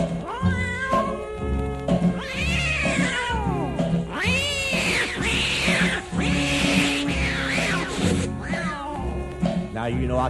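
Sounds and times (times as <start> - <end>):
cats yowling in a squalling exchange: 0.2 - 1.2, 2.1 - 9.3
speech: 9.9 - 10.2.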